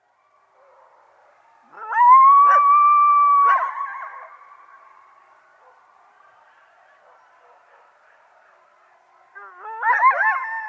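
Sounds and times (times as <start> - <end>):
coyote howl: 1.6 - 4.4, 9.4 - 10.6.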